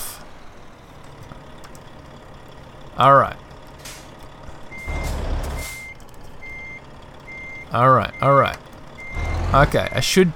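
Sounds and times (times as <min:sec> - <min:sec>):
low truck engine rumble in a video game: 0:00.0 - 0:10.3
speech: 0:03.0 - 0:03.4, 0:07.7 - 0:08.6, 0:09.5 - 0:10.3
truck reversing beeps in a truck-driving video game: 0:03.9 - 0:10.2.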